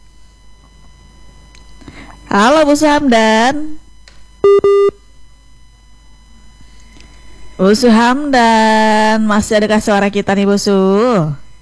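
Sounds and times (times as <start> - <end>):
speech: 2.3 - 3.8, 7.6 - 11.4
telephone busy tone beeps after a call disconnects: 4.4 - 5.0.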